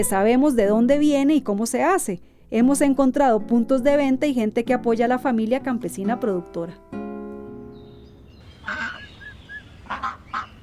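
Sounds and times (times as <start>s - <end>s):
speech: 0.0s - 7.0s
steady noise: 0.0s - 10.6s
ducks and geese honking on a small family farm: 8.0s - 10.6s.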